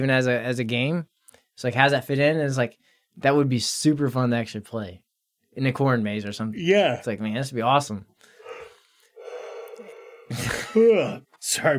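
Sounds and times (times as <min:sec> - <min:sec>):
speech: 0:00.0 - 0:05.0, 0:05.6 - 0:08.1, 0:10.3 - 0:11.7
person yawning: 0:08.4 - 0:11.2.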